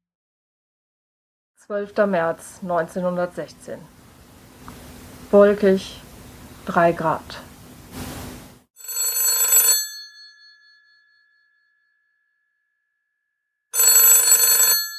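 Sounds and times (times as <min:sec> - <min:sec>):
speech: 0:01.6 - 0:04.0, 0:05.3 - 0:06.0, 0:06.6 - 0:08.1
rustling noise: 0:07.8 - 0:08.7
telephone bell ringing with a loud metallic trill: 0:08.8 - 0:11.9, 0:13.7 - 0:14.9.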